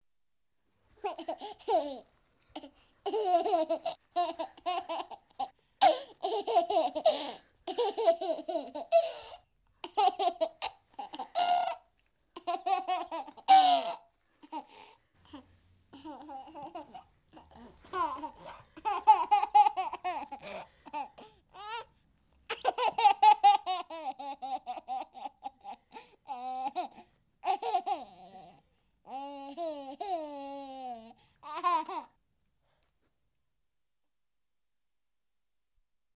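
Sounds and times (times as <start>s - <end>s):
one-year-old boy laughing: 1.0s - 14.8s, 15.9s - 21.9s, 22.5s - 32.1s.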